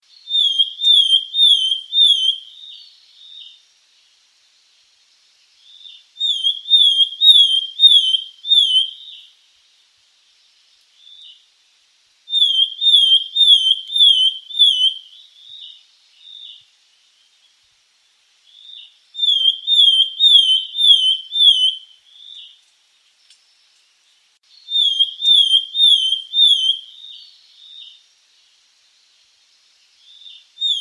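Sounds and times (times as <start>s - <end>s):
Javan sparrow singing: 0.0s - 3.6s, 5.6s - 9.3s, 12.3s - 17.6s, 18.5s - 22.6s, 23.2s - 28.0s, 29.9s - 30.7s.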